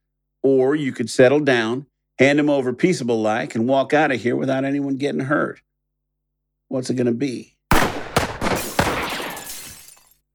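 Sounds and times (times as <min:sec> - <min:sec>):
speech: 0:00.4 - 0:05.7, 0:06.7 - 0:07.5
gunshots knocking a gun out of a hand: 0:07.7 - 0:10.0
glass bottles shattering: 0:08.4 - 0:10.1.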